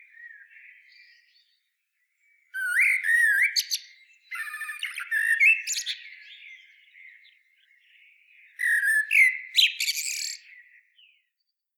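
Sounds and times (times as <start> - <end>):
common blackbird song phrase: 0.0 - 11.3.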